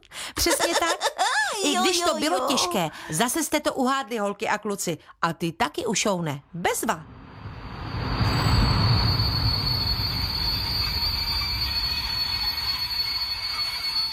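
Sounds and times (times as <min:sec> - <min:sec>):
laughter: 0:00.4 - 0:03.0
speech: 0:00.4 - 0:07.2
train arriving at a terminus main station: 0:07.1 - 0:14.1
train wheel squeal: 0:07.8 - 0:14.1.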